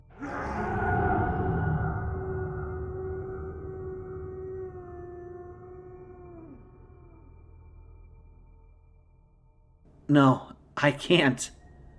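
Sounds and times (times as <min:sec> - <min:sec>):
long haunting distant howling wail: 0:00.0 - 0:08.5
speech: 0:10.1 - 0:11.6.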